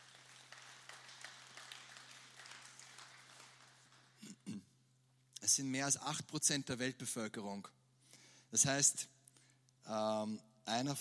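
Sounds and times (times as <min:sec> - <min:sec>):
audience applause: 0:00.0 - 0:04.3
speech: 0:05.5 - 0:07.8, 0:08.5 - 0:09.1, 0:09.9 - 0:10.9.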